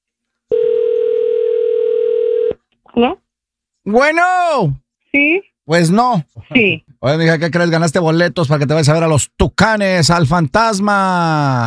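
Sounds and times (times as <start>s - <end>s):
telephone dial tone: 0.5s - 2.6s
speech: 3.0s - 3.2s, 3.8s - 11.6s.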